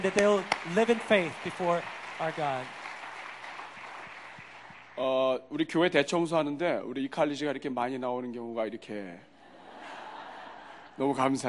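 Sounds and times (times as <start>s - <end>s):
speech: 0.0s - 2.8s, 5.0s - 9.3s, 11.0s - 11.4s
church audience applauding to encourage a college group: 0.0s - 5.1s.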